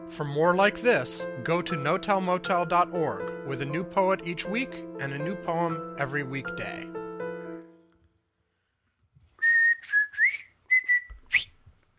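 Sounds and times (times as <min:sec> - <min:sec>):
speech: 0:00.1 - 0:07.0
person whistling a short bright tune: 0:09.4 - 0:11.6.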